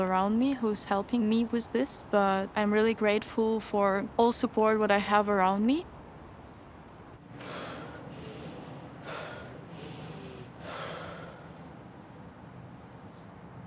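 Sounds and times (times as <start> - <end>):
speech: 0.0 - 5.9
steady low hum: 0.0 - 13.6
airy breathing through the nose: 7.4 - 11.9.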